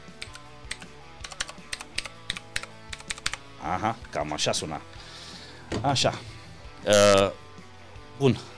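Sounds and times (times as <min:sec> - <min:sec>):
mechanical keyboard keys clicking while typing: 0:00.0 - 0:03.4
speech: 0:03.6 - 0:05.0, 0:05.7 - 0:07.4, 0:08.2 - 0:08.5.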